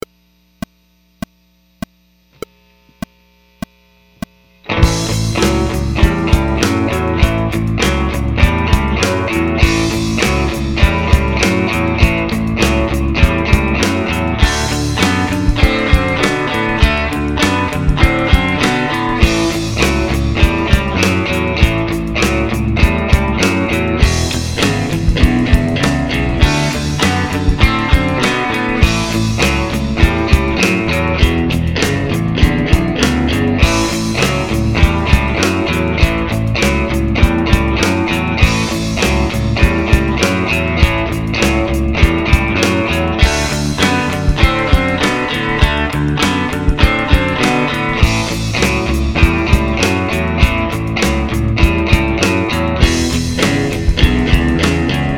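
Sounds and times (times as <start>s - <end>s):
twelve-bar blues rhythm in A: 4.2s - 55.1s.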